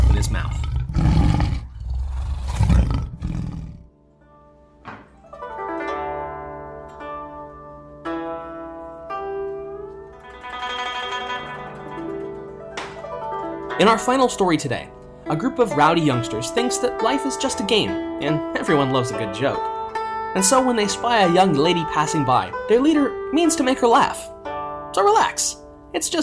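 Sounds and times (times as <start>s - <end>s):
tiger roaring: 0.0s - 3.9s
speech: 0.2s - 1.1s, 13.8s - 19.7s, 20.4s - 24.4s, 25.0s - 26.2s
gentle melodic passage of sustained notes: 4.0s - 26.2s.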